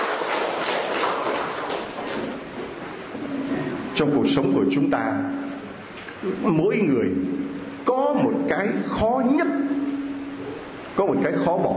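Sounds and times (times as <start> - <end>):
crowd at a religious gathering applauding: 0.0 - 2.5
speech: 4.0 - 5.5, 6.2 - 9.7, 11.0 - 11.7.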